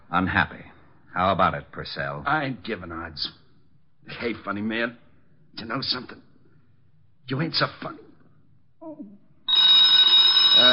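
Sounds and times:
speech: 0.1 - 3.4, 4.1 - 6.3, 7.3 - 8.0
telephone bell ringing: 9.5 - 10.7.

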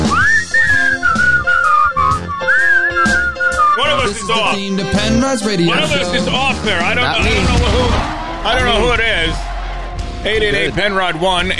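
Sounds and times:
man whistling a wavering sliding melody: 0.0 - 5.1
busy opening theme music of a radio show with drums and instruments: 0.0 - 11.5
speech: 4.3 - 9.5, 10.2 - 11.5.

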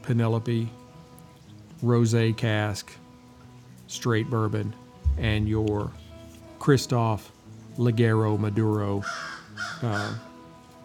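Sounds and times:
speech: 0.0 - 0.8, 1.8 - 3.0, 3.9 - 6.0, 6.6 - 10.3
crow cawing: 9.0 - 10.2.

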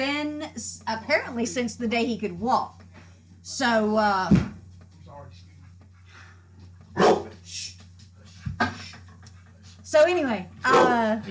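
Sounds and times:
speech: 0.6 - 2.8, 3.4 - 4.5, 9.9 - 11.2
dog barking: 7.0 - 7.4, 10.6 - 11.0.

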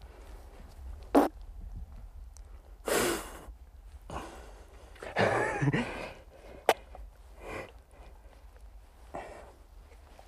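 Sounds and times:
fart-like bursts of air escaping from a dead seal's shot hole: 1.1 - 1.3
laughter: 5.2 - 6.1
speech: 5.6 - 6.1.

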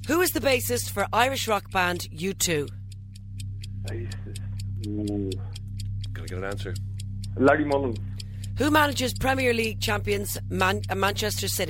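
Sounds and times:
quiz countdown clock ticking: 0.0 - 11.6
steady low electrical hum: 0.0 - 11.6
speech: 0.1 - 2.8, 3.8 - 4.2, 4.8 - 5.6, 6.2 - 8.0, 8.6 - 11.6.

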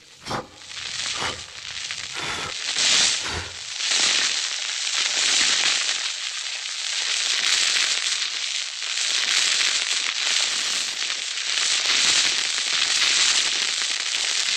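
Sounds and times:
breathy blowing over a small dying fire: 0.0 - 4.2
sustained fire hiss: 0.0 - 6.6, 10.2 - 14.5
fire embers snapping, crackling and popping: 0.0 - 14.5.

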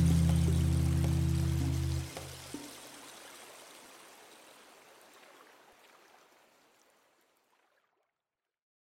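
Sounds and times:
low humming drone: 0.0 - 2.4
mountain stream flowing at the source of the Magdalena River in Colombia: 0.0 - 7.8.

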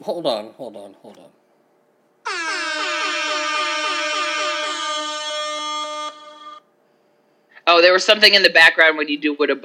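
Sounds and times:
speech: 0.0 - 1.4, 7.8 - 9.6
air horn sound effect with pulsing warble: 2.2 - 6.7.

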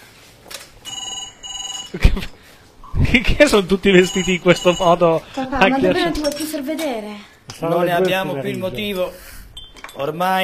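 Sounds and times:
telephone ringing with an electronic ring: 0.8 - 2.0, 3.9 - 5.2
speech: 1.9 - 9.3, 10.0 - 10.4.

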